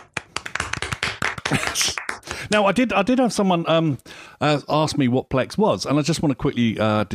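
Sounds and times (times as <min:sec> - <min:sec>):
single person clapping hands: 0:00.0 - 0:02.5
speech: 0:01.5 - 0:07.1.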